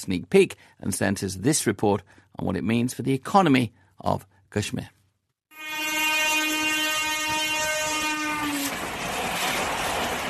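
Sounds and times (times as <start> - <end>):
speech: 0.0 - 5.0
train horn blaring during test run: 5.5 - 8.8
passing train rumbling and rattling: 7.3 - 10.2.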